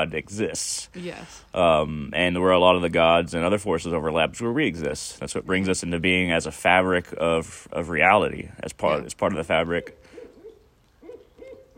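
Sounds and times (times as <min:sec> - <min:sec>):
speech: 0:00.0 - 0:10.1
owl hooting: 0:09.8 - 0:11.7.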